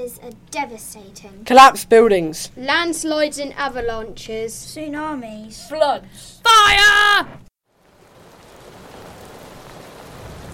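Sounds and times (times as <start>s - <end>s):
speech: 0.0s - 7.4s
wind-driven rain: 7.6s - 10.5s.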